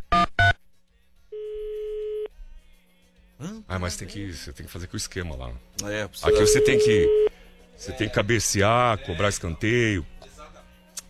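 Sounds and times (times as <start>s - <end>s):
telephone dialing beep: 1.4s - 2.3s, 6.2s - 7.3s
speech: 3.4s - 10.2s
short loud telephone tone bursts: 6.3s - 7.3s.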